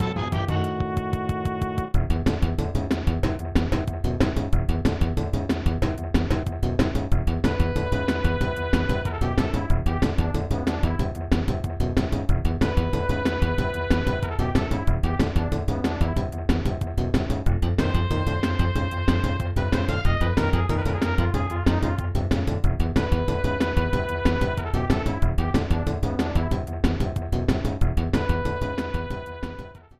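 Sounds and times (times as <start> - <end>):
fortress boss game music: 0.0 - 29.9.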